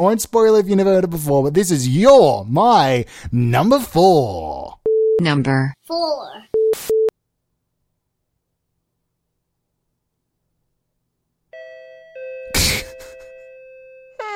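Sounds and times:
speech: 0:00.0 - 0:06.9
home doorbell electronic chime: 0:11.5 - 0:14.3.

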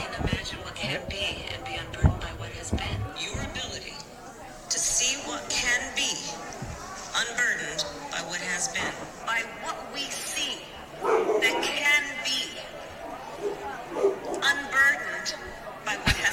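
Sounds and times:
indistinct voices and chatter: 0:00.0 - 0:16.3
speech: 0:00.2 - 0:02.1
dog barking: 0:11.0 - 0:11.8, 0:13.4 - 0:14.5.

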